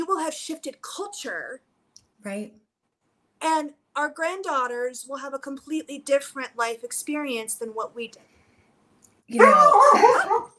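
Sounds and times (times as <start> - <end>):
speech: 0.2 - 2.6, 3.4 - 8.3, 9.3 - 10.5
puppy whining: 9.4 - 10.5.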